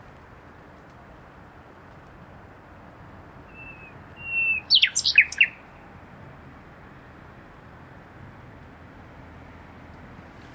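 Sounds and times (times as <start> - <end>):
common nightingale Luscinia megarhynchos song with whistle and sharp chirps: 3.5 - 5.6.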